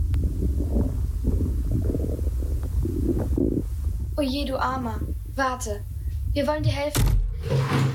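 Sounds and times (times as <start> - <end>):
stomach growling from hunger: 0.0 - 4.0
speech: 4.2 - 7.8.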